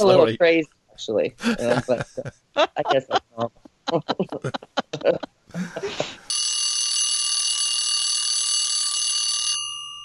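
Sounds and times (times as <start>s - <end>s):
laughter: 0.0s - 0.4s, 1.4s - 6.3s
speech: 0.0s - 6.3s
alarm bell ringing: 6.3s - 10.0s.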